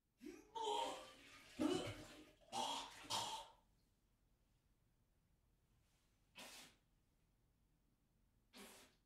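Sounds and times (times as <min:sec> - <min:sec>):
person vomiting in a bathroom: 0:00.2 - 0:03.6.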